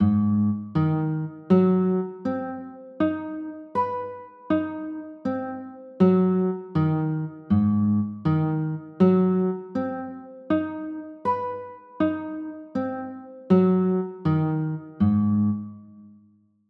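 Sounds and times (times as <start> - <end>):
G sharp 7 sharp 9 chord on guitar: 0.0 - 16.2.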